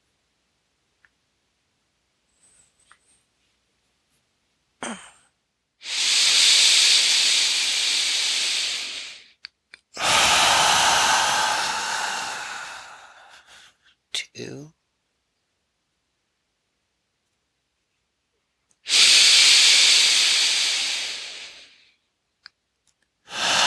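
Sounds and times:
long slow exhales in a guided breathing exercise: 5.8s - 9.4s, 10.0s - 13.8s, 18.9s - 21.8s, 23.3s - 23.6s.

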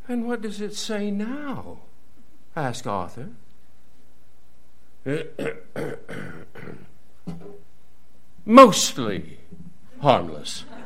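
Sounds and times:
speech: 0.1s - 1.9s, 2.6s - 3.4s, 5.0s - 7.6s, 8.4s - 10.8s
embarrassed-sounding rough throaty cough: 5.1s - 7.6s.

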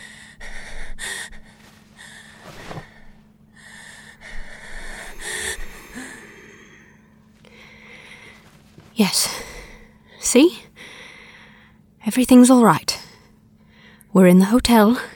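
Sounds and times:
heavy ragged gasping breaths with wheezy inhales and snorting exhales: 0.0s - 8.6s, 10.8s - 11.8s
speech: 9.0s - 9.5s, 10.3s - 10.7s, 12.1s - 12.8s, 14.2s - 15.1s.

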